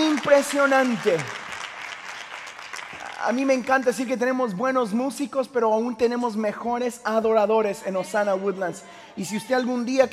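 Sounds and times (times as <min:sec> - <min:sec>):
crowd applauding: 0:00.0 - 0:04.4
speech: 0:00.4 - 0:01.4, 0:03.2 - 0:10.1.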